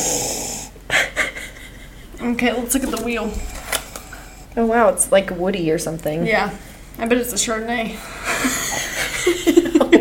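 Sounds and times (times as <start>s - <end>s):
long breathy inhale: 0.0s - 0.8s
person sniffing at a glass of pale white wine: 0.0s - 0.8s
laughter: 0.9s - 2.4s, 8.2s - 9.9s
speech: 2.2s - 3.6s, 4.6s - 8.6s.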